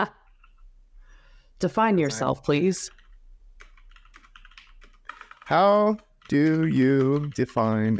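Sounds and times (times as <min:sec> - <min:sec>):
speech: 0:01.6 - 0:03.0, 0:05.5 - 0:07.9
typing on a computer keyboard: 0:02.9 - 0:07.9.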